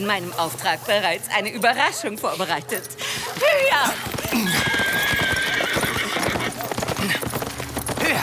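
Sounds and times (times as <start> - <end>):
speech: 0.0 - 5.0
clip-clop of galloping horse hooves: 2.2 - 8.2
horse whinnying with a long high neigh: 3.7 - 8.2.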